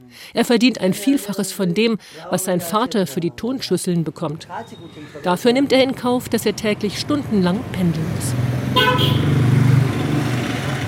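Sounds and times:
speech: 0.1s - 9.5s
busy road traffic with trucks, buses and motorcycles: 4.0s - 10.8s
heavy vehicle engines idling and revving in dense road traffic: 5.6s - 10.8s.

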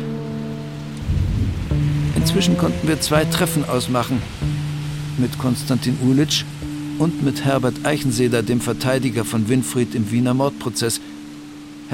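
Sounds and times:
rain: 0.0s - 11.9s
strong wind buffeting loudly and close: 1.0s - 9.4s
speech: 2.3s - 4.6s, 5.2s - 11.2s.

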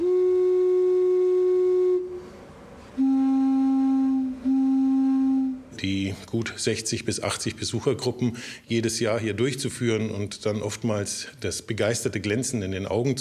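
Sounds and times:
single organ pipe sounding a reedy whistle-like tone: 0.0s - 2.3s, 3.0s - 5.6s
speech: 6.2s - 13.1s.

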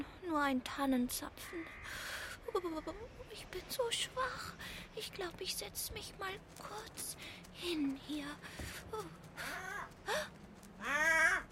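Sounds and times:
speech: 0.3s - 11.5s
crow cawing: 1.4s - 2.3s, 10.8s - 11.5s.

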